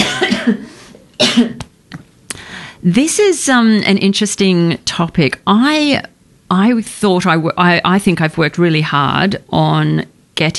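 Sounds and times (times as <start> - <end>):
person coughing: 0.0 - 1.7
speech: 0.5 - 0.7, 2.8 - 10.5.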